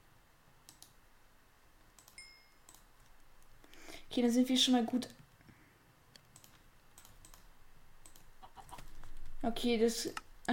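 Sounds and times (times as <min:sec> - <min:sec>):
speech: 0:04.2 - 0:05.2, 0:09.5 - 0:10.5
video game chicken clucking: 0:08.3 - 0:09.0.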